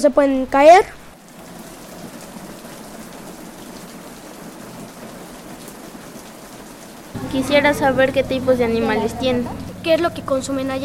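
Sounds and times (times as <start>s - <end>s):
speech: 0.0s - 1.0s, 7.4s - 10.8s
heavy rain striking surfaces: 0.6s - 10.8s.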